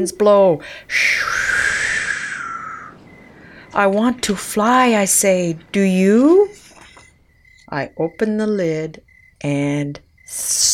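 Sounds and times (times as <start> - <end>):
speech: 0.0 - 1.8, 3.7 - 6.6, 7.7 - 10.7
owl hooting at night: 0.7 - 7.6.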